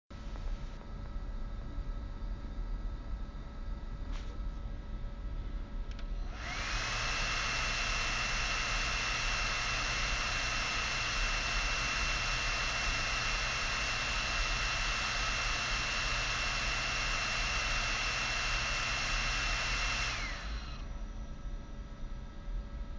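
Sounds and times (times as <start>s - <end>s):
noisy computer fan: 0.2s - 22.9s.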